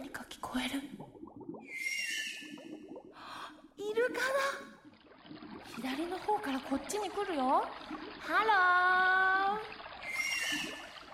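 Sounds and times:
speech: 0.5 - 1.0, 6.5 - 9.7
dolphin whistling and chirping underwater: 1.6 - 2.6, 10.0 - 10.9
soft wash of water: 4.0 - 11.1.

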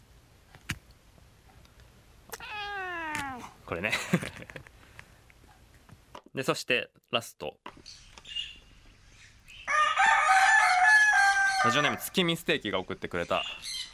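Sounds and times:
cat meowing: 2.3 - 3.6
barnyard noise: 2.3 - 3.8, 8.4 - 12.4
speech: 3.7 - 4.8, 6.4 - 8.1, 11.6 - 13.8
laughter: 3.8 - 4.7
rooster crowing: 9.7 - 12.1.

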